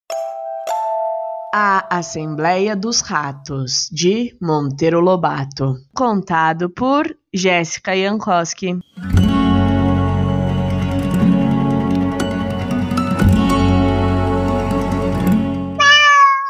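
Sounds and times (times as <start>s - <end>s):
speech: 1.5s - 9.2s
sustained droning musical backdrop: 9.0s - 15.8s
cat meowing: 15.8s - 16.4s.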